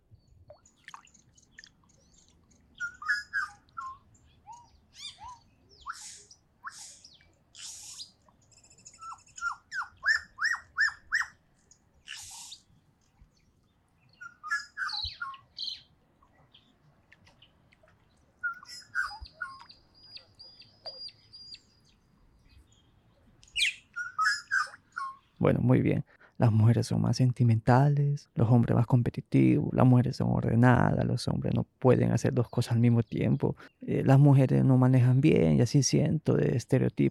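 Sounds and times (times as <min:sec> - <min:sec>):
birds chirping and singing at a lake: 0:00.2 - 0:25.6, 0:32.0 - 0:34.6
speech: 0:25.5 - 0:37.0.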